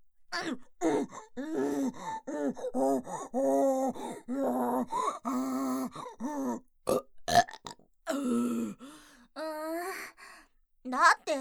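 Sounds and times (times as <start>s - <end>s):
person straining to defecate with voiced grunts and groans: 0.4s - 6.6s
breathy gasps: 0.9s - 6.6s, 8.1s - 10.5s
burping while straining: 6.9s - 8.5s.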